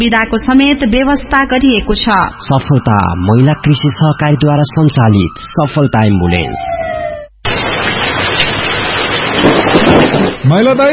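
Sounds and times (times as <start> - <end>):
speech: 0.0 - 7.1, 9.4 - 10.9
heavy rain: 7.4 - 10.9.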